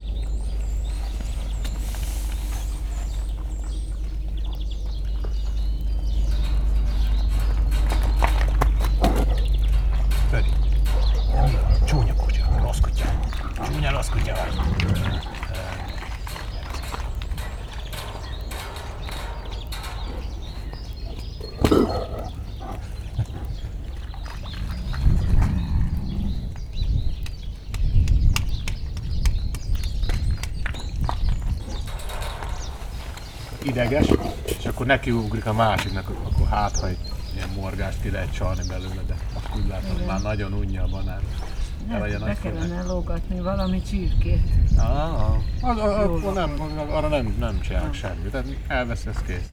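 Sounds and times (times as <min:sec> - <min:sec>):
windy weather: 0:00.0 - 0:49.5
grey wolf growling in Hortobágy National Park: 0:00.2 - 0:27.2, 0:31.5 - 0:43.8.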